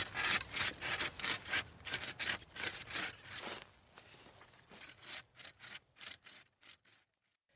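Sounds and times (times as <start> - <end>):
hand saw cutting down a tree in woodland: 0.0 - 3.7, 4.5 - 7.3.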